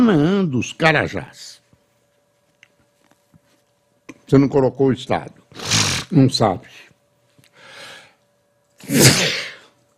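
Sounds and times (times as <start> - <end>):
speech: 0.0 - 1.6, 4.3 - 6.8, 8.8 - 9.5
person sneezing: 5.6 - 6.1, 8.8 - 9.7.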